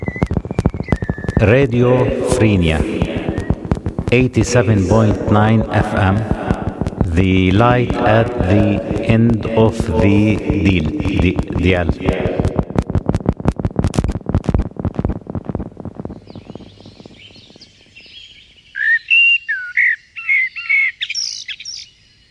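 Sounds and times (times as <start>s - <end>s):
dense rapid run of pulsing sound: 0.0s - 18.1s
speech: 1.4s - 3.0s, 4.1s - 6.4s, 7.2s - 12.2s
blackbird singing warbling phrases: 16.1s - 22.2s.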